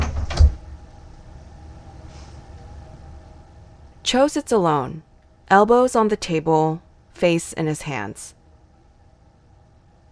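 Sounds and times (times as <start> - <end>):
door slammed shut by a man: 0.0 - 0.6
speech: 4.1 - 8.4.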